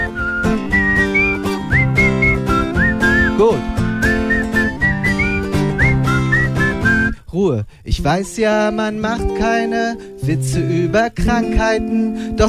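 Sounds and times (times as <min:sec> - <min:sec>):
whistled tune: 0:00.0 - 0:07.2
speech: 0:07.4 - 0:12.4.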